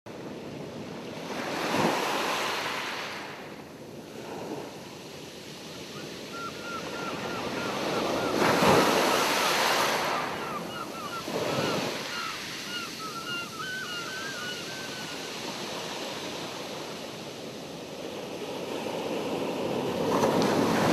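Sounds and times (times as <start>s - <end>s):
ocean: 0.1s - 20.9s
seagulls: 6.0s - 15.4s.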